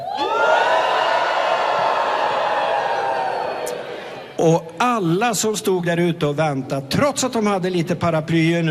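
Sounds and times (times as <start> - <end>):
big group of students cheering and shrieking: 0.0 - 4.4
speech: 4.4 - 8.6.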